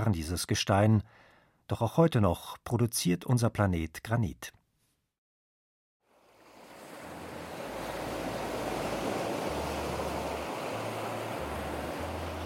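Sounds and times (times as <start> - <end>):
speech: 0.0 - 4.6
Indian Ocean surf breaking on a sandy beach on La Digue in the Seychelles: 6.1 - 12.4.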